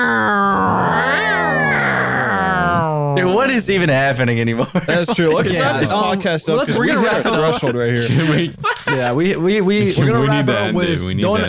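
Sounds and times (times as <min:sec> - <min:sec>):
person imitating a cat with a drawn-out wavering yowl: 0:00.0 - 0:03.2
speech: 0:03.2 - 0:11.4
laughter: 0:04.5 - 0:10.8.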